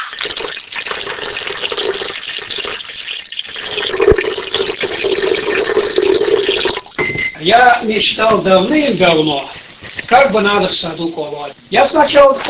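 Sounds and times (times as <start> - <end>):
water splashing from a well beside a house: 0.0 - 7.0
speech: 0.1 - 0.6, 7.4 - 12.4.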